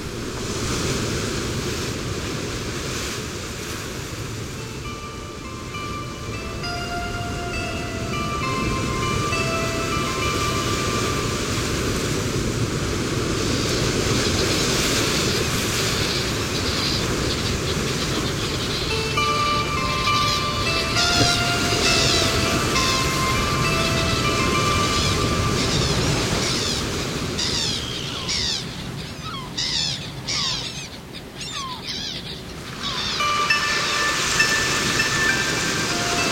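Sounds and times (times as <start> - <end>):
wind gusting around an island lighthouse: 0.0 - 30.3, 32.4 - 36.3
sea waves around an island lighthouse: 0.0 - 36.3
faint tonal music: 4.3 - 15.2, 15.8 - 27.8, 32.7 - 36.3.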